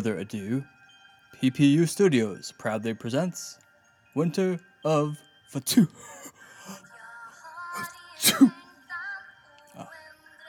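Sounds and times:
speech: 0.0 - 3.6, 4.2 - 6.8, 8.2 - 8.6
soft sustained tonal background: 0.0 - 10.4
single sharp sneeze: 7.8 - 8.6.

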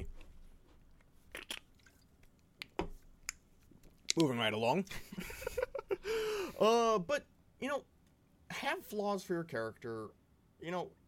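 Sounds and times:
sipping an energy drink from a can: 1.3 - 2.1
speech: 4.2 - 5.4, 6.1 - 7.9, 8.6 - 11.0.

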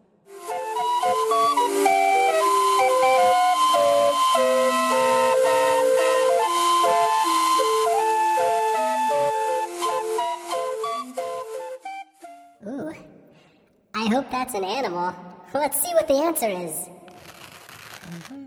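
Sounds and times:
steam calliope playing a lively melody: 0.4 - 11.6
speech: 14.5 - 16.9.

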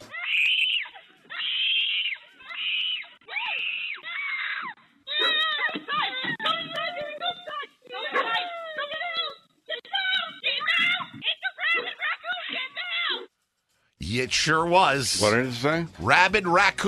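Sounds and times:
five-year-old girl screaming during a rabid raccoon attack: 0.0 - 6.7, 8.0 - 13.3
speech: 14.2 - 16.8.

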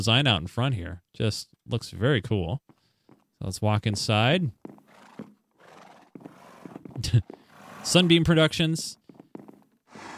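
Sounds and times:
speech: 0.0 - 2.7, 3.4 - 4.8, 7.0 - 9.0
horse whinnying: 4.7 - 8.3, 9.9 - 10.1.

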